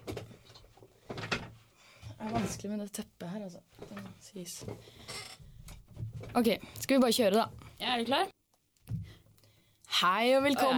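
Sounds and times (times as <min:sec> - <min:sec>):
chair creaking: 0:00.0 - 0:01.6, 0:03.8 - 0:06.4
speech: 0:02.2 - 0:05.2, 0:06.2 - 0:08.3, 0:10.0 - 0:10.7.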